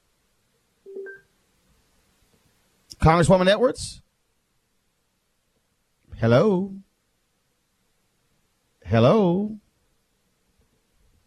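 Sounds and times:
telephone keypad tone as a call is answered: 0.9s - 1.3s
speech: 3.0s - 4.0s, 6.2s - 6.8s, 8.9s - 9.6s.

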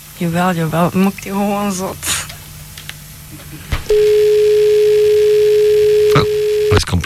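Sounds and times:
speech: 0.2s - 2.1s, 3.5s - 4.3s, 6.8s - 7.0s
telephone dial tone after the caller hangs up: 3.9s - 6.8s.

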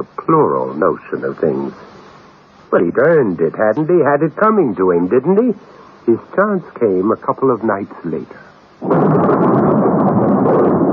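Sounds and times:
speech: 0.0s - 1.9s, 2.7s - 9.6s
thunder rumbling in a storm: 8.8s - 10.9s.

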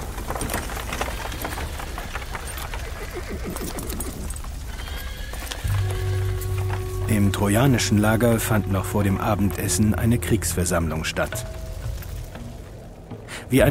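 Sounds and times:
chariot horse hooves clip-clopping: 0.0s - 13.6s
chariot horses neighing while being unharnessed at an evening camp: 0.5s - 10.0s
speech: 3.3s - 3.8s, 7.1s - 11.6s
low hum: 5.6s - 13.4s.

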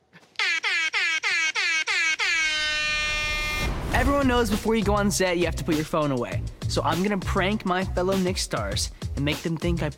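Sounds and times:
air horn blasts from a prank: 0.4s - 3.8s
speech: 4.0s - 9.9s.

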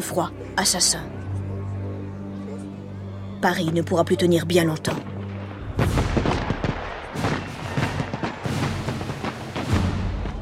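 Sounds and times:
speech: 0.0s - 1.3s, 3.4s - 5.1s
Prussian cannon fire shelling a city during a siege: 5.2s - 10.4s.

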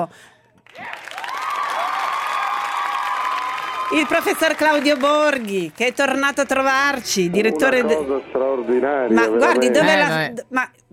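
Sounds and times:
speech: 0.0s - 1.0s, 3.9s - 10.9s
studio audience applause at a television show: 0.6s - 7.0s.

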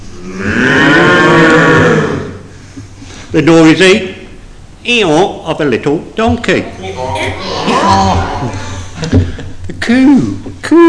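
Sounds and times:
speech: 0.2s - 0.5s, 3.4s - 4.2s, 4.8s - 10.8s
big black cow mooing deeply: 0.2s - 2.4s.

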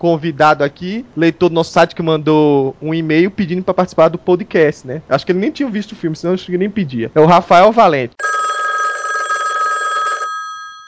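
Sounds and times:
speech: 0.0s - 8.4s
telephone bell ringing: 8.2s - 10.8s.

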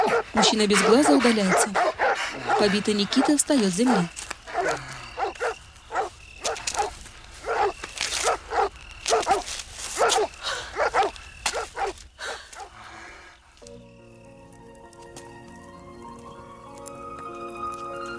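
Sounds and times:
two white dogs barking at the entrance of a building: 0.0s - 12.0s
speech: 0.2s - 4.8s.

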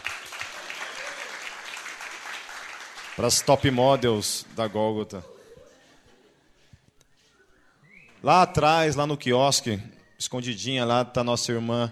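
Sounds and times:
applause from a congregation at a church gathering: 0.0s - 4.8s
speech: 3.2s - 5.4s, 8.2s - 11.9s
laughter: 3.7s - 6.8s.

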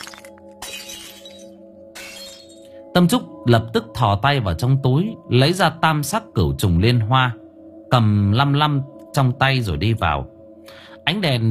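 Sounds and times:
things breaking and shattering inside: 0.0s - 2.6s
speech: 3.0s - 11.4s.

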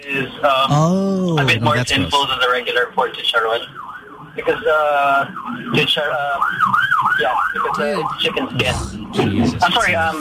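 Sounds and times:
speech: 0.0s - 3.8s, 4.4s - 10.2s
ambulance siren wailing: 3.3s - 8.6s.

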